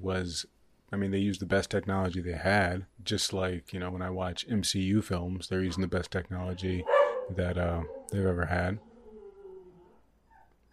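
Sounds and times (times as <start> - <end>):
speech: 0.0 - 8.9
dog giving drawn-out wavering howl-like whines: 6.8 - 10.7.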